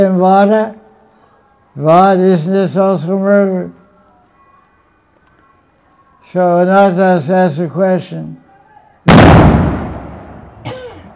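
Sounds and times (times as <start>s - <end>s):
speech: 0.0s - 0.8s, 1.8s - 3.8s, 6.3s - 8.4s
loud explosion shaking the whole house: 9.1s - 10.7s.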